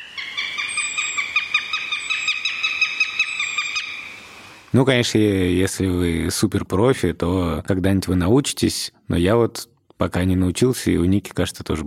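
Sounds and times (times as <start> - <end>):
northern goshawk giving harsh nasal kek notes: 0.0 - 4.6
speech: 4.7 - 11.8.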